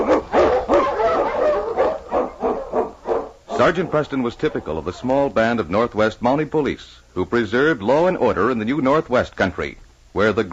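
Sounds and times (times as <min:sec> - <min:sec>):
husky sled dogs barking and yipping: 0:00.0 - 0:05.5
speech: 0:03.6 - 0:10.5.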